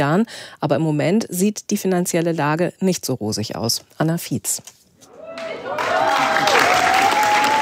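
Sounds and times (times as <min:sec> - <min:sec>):
speech: 0:00.0 - 0:04.8
large theatre audience applauding a youth theatre performance: 0:05.4 - 0:07.5.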